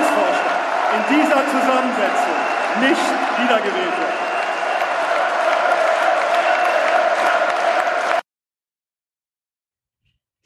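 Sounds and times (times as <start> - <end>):
large crowd cheering: 0.0 - 8.3
speech: 1.1 - 4.3.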